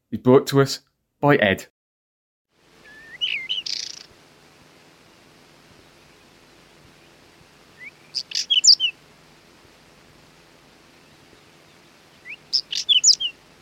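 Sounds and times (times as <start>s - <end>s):
speech: 0.1s - 1.7s
hiss: 2.5s - 13.6s
whinchat singing scratchy warbling phrases: 2.8s - 4.1s, 5.7s - 9.1s, 10.7s - 13.6s.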